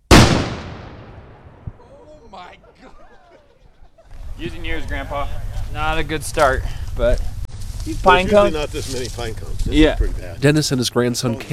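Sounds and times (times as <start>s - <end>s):
small cannon firing for shotgun start outdoors: 0.1s - 2.0s
laughter: 1.8s - 7.3s
speech: 2.3s - 3.5s, 4.4s - 7.3s, 7.9s - 11.5s.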